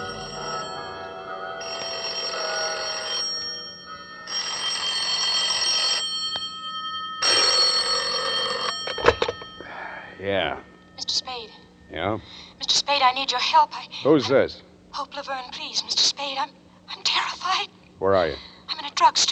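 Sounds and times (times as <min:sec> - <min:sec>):
bell ringing: 0:00.0 - 0:11.7
speech: 0:10.2 - 0:16.6, 0:17.4 - 0:19.3.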